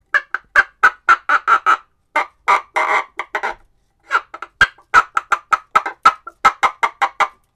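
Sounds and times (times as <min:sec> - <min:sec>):
hen clucking: 0:00.1 - 0:07.4.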